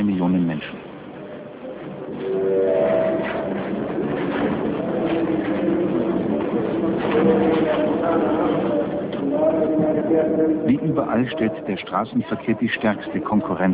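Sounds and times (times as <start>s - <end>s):
speech: 0.2s - 0.7s, 11.1s - 13.7s
crowd chatter at a busy railway station in Nairobi Kenya: 1.2s - 13.7s.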